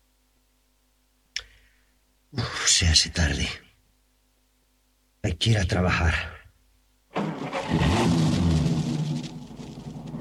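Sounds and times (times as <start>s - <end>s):
speech: 2.3s - 3.7s, 5.3s - 6.4s
truck engine starting: 7.1s - 10.1s.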